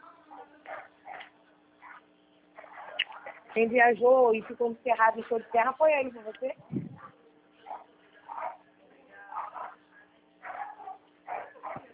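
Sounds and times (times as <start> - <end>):
steady low hum: 0.0 - 11.9
dogs barking: 0.3 - 3.6, 7.0 - 8.6, 9.3 - 9.8, 10.4 - 11.9
speech: 3.6 - 6.9.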